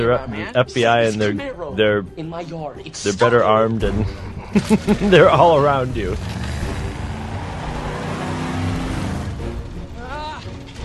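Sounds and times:
laughter: 0:00.0 - 0:01.4, 0:03.1 - 0:06.2
speech: 0:00.0 - 0:06.4
car engine roaring while driving down the middle of a sidewalk: 0:03.3 - 0:10.8.

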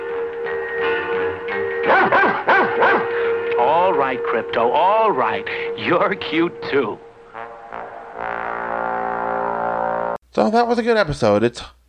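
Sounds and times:
steady humming tone: 0:00.0 - 0:10.2
white puppy yipping barks: 0:01.9 - 0:03.1
speech: 0:04.0 - 0:07.1, 0:10.4 - 0:11.8.

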